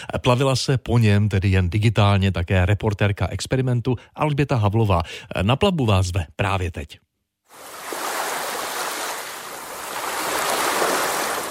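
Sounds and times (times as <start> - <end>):
speech: 0.1 - 7.7
ocean surf in a VR soundscape: 7.5 - 11.4.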